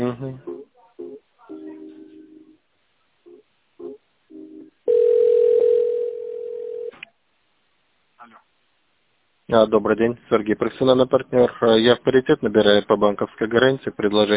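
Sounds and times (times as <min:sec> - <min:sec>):
speech: 0:00.1 - 0:00.5, 0:09.5 - 0:14.3
telephone line beeps during call transfer: 0:04.9 - 0:06.9.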